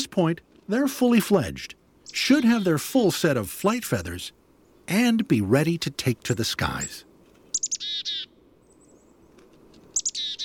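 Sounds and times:
speech: 0.2 - 7.1
chickadee calls: 2.0 - 2.8, 6.6 - 8.4, 9.9 - 10.4.

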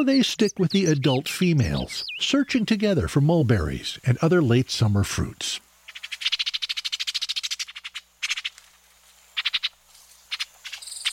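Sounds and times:
speech: 0.0 - 5.7
orchard oriole chattering calls: 0.2 - 2.8, 5.9 - 8.6, 9.4 - 11.1.

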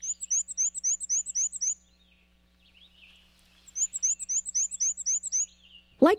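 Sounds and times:
black-and-white warbler singing high wheezy song: 0.0 - 6.0.

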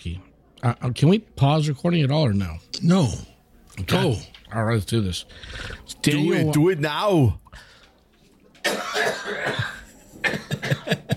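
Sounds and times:
speech: 0.0 - 7.7
strained breath: 5.3 - 5.9
person coughing harshly after inhaling a sip of whiskey: 8.6 - 11.1.

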